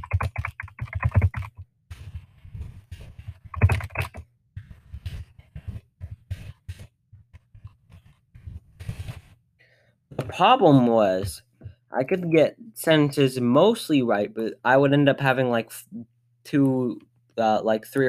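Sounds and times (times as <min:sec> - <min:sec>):
hunt-and-peck typing on a computer keyboard: 0:00.0 - 0:01.6, 0:03.5 - 0:04.2
speech: 0:10.4 - 0:18.0.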